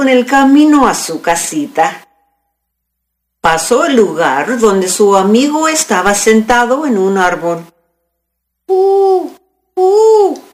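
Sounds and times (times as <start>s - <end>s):
speech: 0.0s - 2.1s, 3.4s - 7.7s, 8.7s - 10.5s
owl hooting in a tree: 8.7s - 10.5s.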